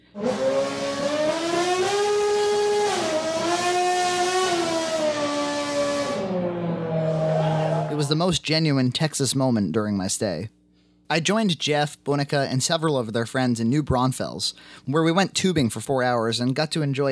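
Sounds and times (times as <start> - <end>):
race car engine revving out a melody: 0.0 - 8.0
speech: 8.1 - 17.1.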